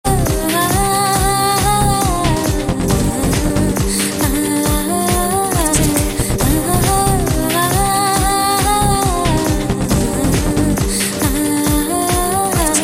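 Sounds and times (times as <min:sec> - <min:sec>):
Tamil devotional music: 0:00.0 - 0:12.8.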